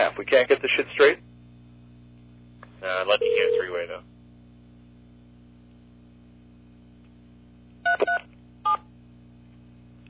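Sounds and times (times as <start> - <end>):
faint low hum: 0.0 - 10.0
speech: 0.1 - 1.3, 2.8 - 4.1
telephone keypad dialing tones dialing into a conference call line: 3.2 - 3.7.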